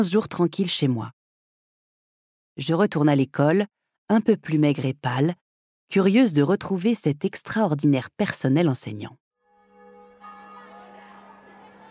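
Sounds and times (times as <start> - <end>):
speech: 0.0 - 1.2, 2.6 - 9.2
bell striking half past seven at a school playground: 9.5 - 11.8.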